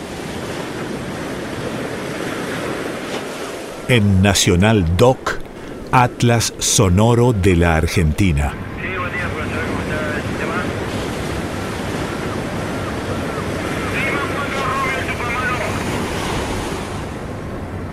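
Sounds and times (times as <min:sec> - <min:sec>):
sea surf breaking along the coast at Camarones Chubut Province Argentina: 0:00.0 - 0:17.9
speech: 0:03.9 - 0:09.0.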